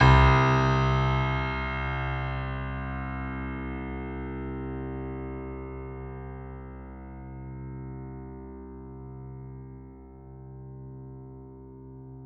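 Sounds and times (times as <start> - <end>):
white grand piano playing C1: 0.0 - 4.0.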